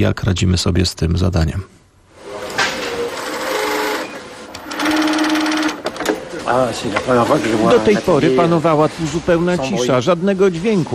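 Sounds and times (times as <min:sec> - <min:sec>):
speech: 0:00.0 - 0:01.8, 0:06.5 - 0:10.9
sewing machines whirring in a sewing workshop stitching face masks: 0:02.2 - 0:06.2.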